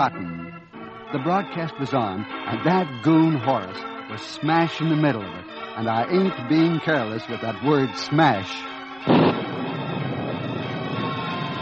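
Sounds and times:
speech: 0:00.0 - 0:00.3, 0:01.1 - 0:09.2
explosion blast of an arsenal set on fire: 0:09.0 - 0:11.6
roaring rumble of an arsenal on fire: 0:09.0 - 0:11.6.

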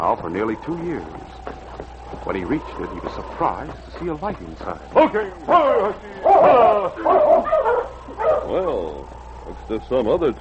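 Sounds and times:
speech: 0:00.0 - 0:01.6, 0:02.2 - 0:10.3
sled dogs barking and yipping: 0:04.9 - 0:09.2.

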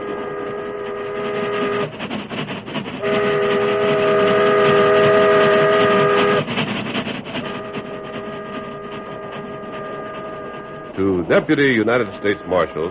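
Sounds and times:
long steady steam train whistle blasts: 0:00.0 - 0:01.9, 0:03.0 - 0:06.5, 0:07.5 - 0:11.0
wood-burning steam train rattling and rumbling onto windswept prairie: 0:00.0 - 0:12.8
speech: 0:11.4 - 0:12.8.

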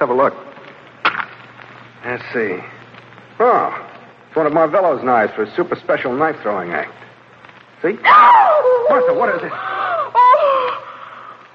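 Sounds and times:
speech: 0:00.0 - 0:00.5, 0:02.0 - 0:02.8, 0:03.4 - 0:07.0, 0:07.8 - 0:09.7
woman screaming in terror: 0:08.0 - 0:11.3.

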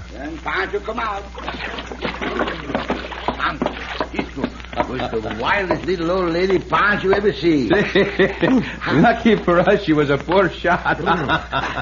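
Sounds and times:
speech: 0:00.2 - 0:11.7
faint water dripping: 0:00.4 - 0:10.4
water splashing as a man climbs out of a water barrel: 0:01.0 - 0:06.8
laughter: 0:04.0 - 0:05.2, 0:07.5 - 0:09.8, 0:10.4 - 0:11.7.

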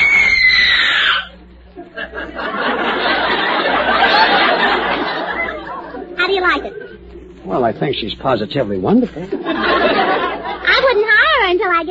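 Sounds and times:
woman screaming shrilly on radio: 0:00.0 - 0:01.4
audience laughter: 0:01.7 - 0:07.1, 0:09.0 - 0:10.9
speech: 0:07.8 - 0:10.1.

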